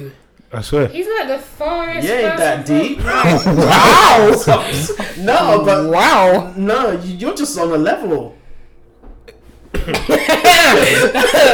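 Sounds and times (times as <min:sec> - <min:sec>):
speech: 0:00.0 - 0:08.4, 0:09.8 - 0:11.5
laughter: 0:03.0 - 0:06.5, 0:09.8 - 0:11.5
man clearing his throat: 0:09.3 - 0:11.5.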